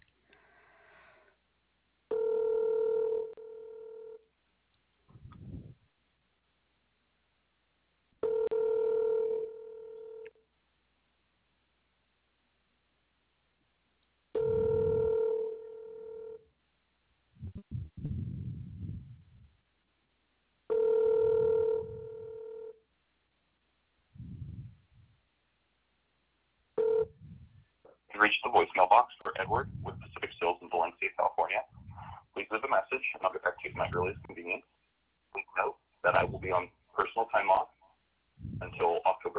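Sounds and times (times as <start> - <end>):
phone ringback tone on a call to a store salesperson: 2.1 - 4.2, 8.2 - 10.3, 14.4 - 16.4, 20.7 - 22.8, 26.8 - 27.2
speech: 28.2 - 31.8, 32.5 - 34.7, 35.3 - 37.8, 38.6 - 39.3.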